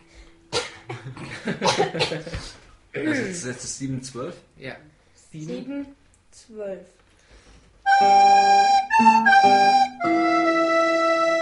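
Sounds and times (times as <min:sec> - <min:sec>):
sharp cough: 0:00.5 - 0:02.6
speech: 0:00.9 - 0:07.0, 0:08.0 - 0:10.3.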